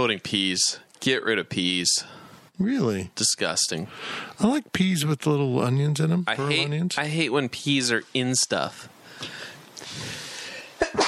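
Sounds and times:
speech: 0.0s - 9.5s
breathy inhale: 3.9s - 4.4s, 9.0s - 10.8s
person sneezing: 10.8s - 11.0s.

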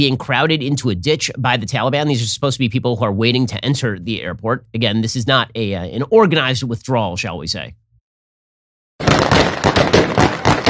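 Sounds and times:
speech: 0.0s - 7.8s
gunfire outside an airport: 9.0s - 10.6s.

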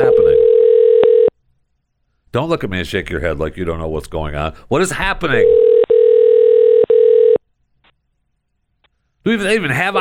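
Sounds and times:
telephone dial tone while dialing out: 0.4s - 1.3s, 5.6s - 7.4s
speech: 2.3s - 5.6s, 9.2s - 9.9s.

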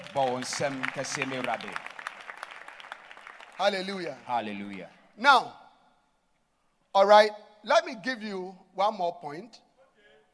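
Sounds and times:
crowd clapping hands for the Lord: 0.0s - 5.0s
speech: 0.2s - 1.9s, 3.6s - 5.6s, 6.9s - 9.6s.

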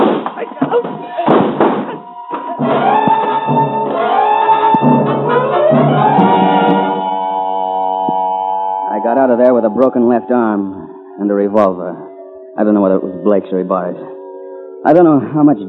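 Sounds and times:
bodies crashing to the floor in a scuffle: 0.0s - 4.0s
droning rising tonal sound: 2.1s - 15.6s
speech: 9.2s - 12.0s, 12.6s - 14.1s, 14.8s - 15.6s.

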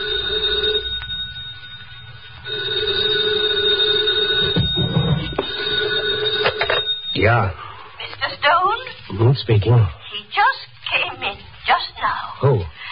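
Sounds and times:
telephone ringing with electronic trill: 0.0s - 7.6s
speech: 7.2s - 7.6s, 9.1s - 10.6s, 11.7s - 12.7s.

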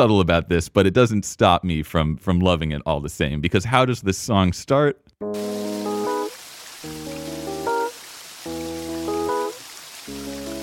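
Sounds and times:
speech: 0.0s - 5.7s
steady rain hiss with watery patter: 5.4s - 10.6s.

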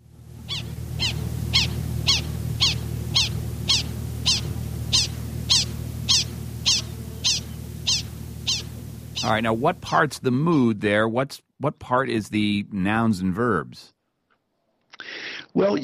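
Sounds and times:
low rumbling hum: 0.0s - 11.1s
prairie dog alarm chirps: 0.4s - 9.4s
speech: 9.3s - 13.9s, 15.6s - 15.8s.

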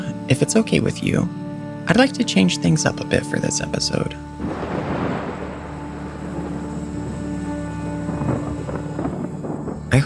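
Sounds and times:
speech: 0.3s - 4.7s
blustery wind: 3.6s - 10.0s
thunder rumbling from a brewing storm: 4.4s - 10.0s.

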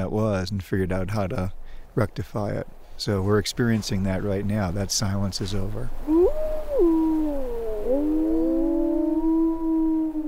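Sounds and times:
speech: 0.1s - 6.2s
wolves howling in a chorus in snow: 6.0s - 10.2s.

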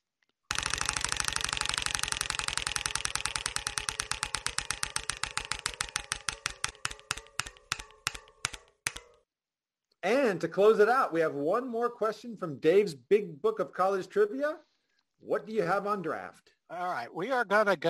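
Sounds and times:
prize wheel spinning during a trivia game, pointer ratcheting clicks: 0.5s - 9.2s
speech: 10.1s - 17.8s.

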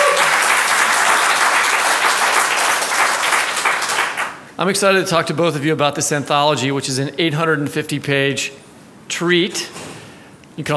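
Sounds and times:
audience applause at a live book fair event: 0.0s - 4.4s
speech: 4.6s - 9.8s, 10.6s - 10.7s.

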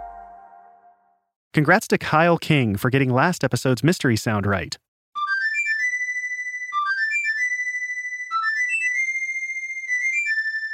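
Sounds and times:
video game flute melody: 0.0s - 1.1s, 5.2s - 10.7s
speech: 1.6s - 4.8s.

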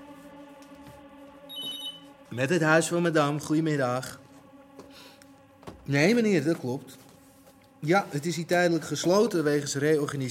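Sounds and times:
steady tonal background: 0.0s - 10.2s
telephone ringing: 1.5s - 2.1s
speech: 2.3s - 4.2s, 5.9s - 7.0s, 7.8s - 10.2s.

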